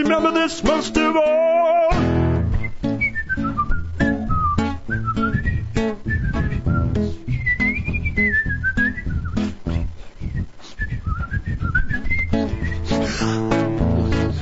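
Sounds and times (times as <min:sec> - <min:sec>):
speech: 0:00.0 - 0:02.2
person whistling a lilting melody: 0:02.3 - 0:13.8.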